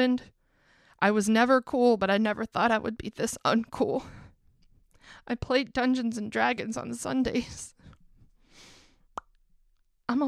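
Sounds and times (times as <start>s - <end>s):
speech: 0.0s - 0.4s, 1.0s - 4.2s, 5.0s - 7.8s, 10.1s - 10.2s
lip pop: 9.1s - 9.4s.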